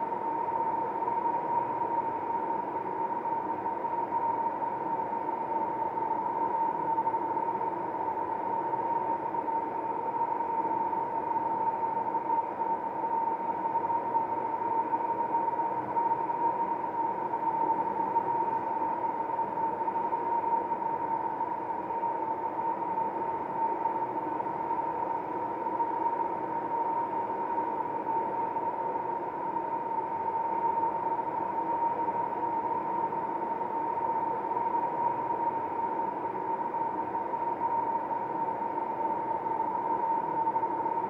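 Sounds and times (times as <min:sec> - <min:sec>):
steady roar in a ventilation shaft: 0:00.0 - 0:41.0.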